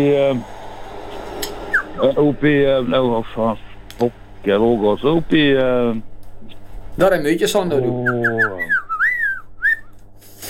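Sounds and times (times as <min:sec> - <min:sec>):
speech: 0:00.0 - 0:00.6, 0:02.0 - 0:08.8
person whistling: 0:08.3 - 0:09.9.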